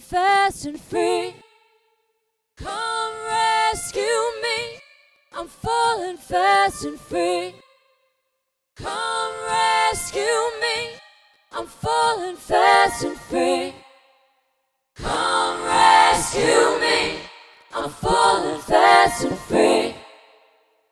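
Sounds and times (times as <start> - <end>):
fake choir: 0.2 - 1.8, 2.6 - 8.0, 8.8 - 14.4, 15.0 - 20.7.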